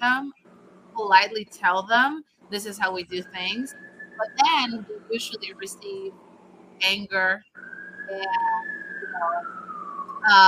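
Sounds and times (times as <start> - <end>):
speech: 1.1 - 6.2, 6.8 - 8.6, 9.2 - 9.6, 10.2 - 10.4
ambulance siren passing by: 2.8 - 10.4.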